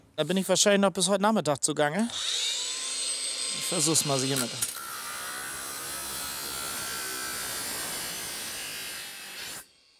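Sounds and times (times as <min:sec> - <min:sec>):
speech: 0:00.2 - 0:02.6, 0:03.7 - 0:04.8
angle grinder cutting through a metal grate: 0:02.1 - 0:09.9.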